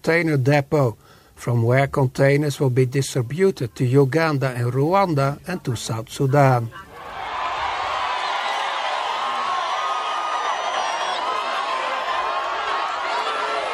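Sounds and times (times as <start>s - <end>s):
speech: 0.0s - 6.9s
large crowd cheering and shouting at a train station: 6.7s - 13.7s
high whoops from the crowd: 6.9s - 13.7s.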